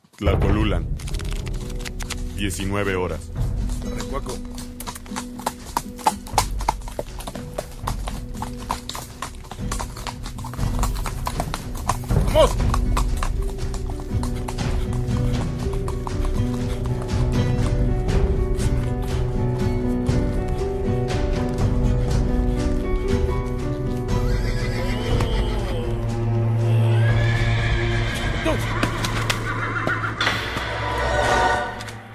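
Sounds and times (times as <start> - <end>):
speech: 0.2 - 1.1, 2.4 - 5.3
horse galloping hard at evening near Tlacolulan in Mexico: 3.3 - 26.2, 27.2 - 30.8
horse whinnying: 24.1 - 31.6.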